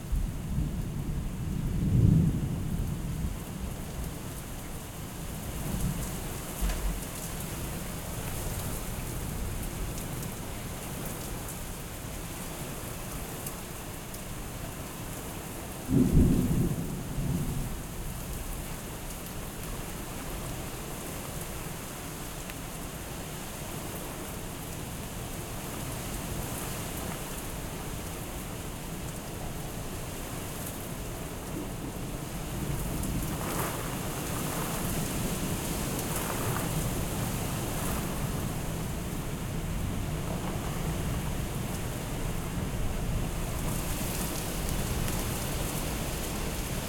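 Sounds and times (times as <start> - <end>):
steady rain shower: 0.0 - 46.8
thunder: 1.7 - 3.3, 15.9 - 17.8.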